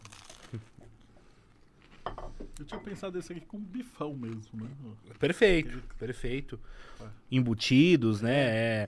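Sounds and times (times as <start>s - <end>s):
person biting into crunchy bruschetta: 0.0s - 2.1s
speech: 2.6s - 8.8s.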